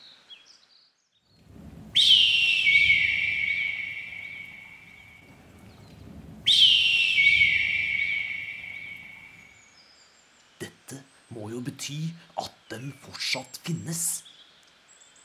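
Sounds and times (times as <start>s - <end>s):
golden bird whistled calls: 2.0s - 5.2s, 6.5s - 9.8s
speech: 11.8s - 14.3s.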